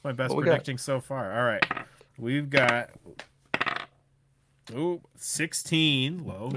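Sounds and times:
speech: 0:00.0 - 0:03.3, 0:04.7 - 0:06.5
dice being rolled: 0:01.6 - 0:01.9, 0:03.6 - 0:03.9.

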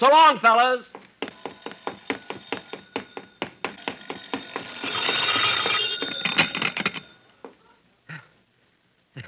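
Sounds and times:
speech: 0:00.0 - 0:01.0
old-fashioned telephone bell ringing: 0:01.3 - 0:07.3.

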